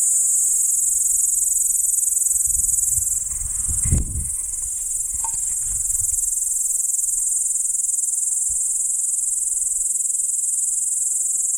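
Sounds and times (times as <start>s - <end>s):
P. capensis insect high-pitched buzzing near Arniston: 0.9s - 9.8s.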